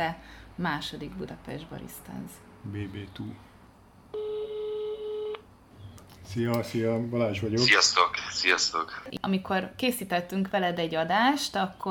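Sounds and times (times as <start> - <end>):
speech: 0.0 - 3.5, 6.3 - 11.8
phone call dialing tone: 4.2 - 5.4
hiss: 5.8 - 9.2.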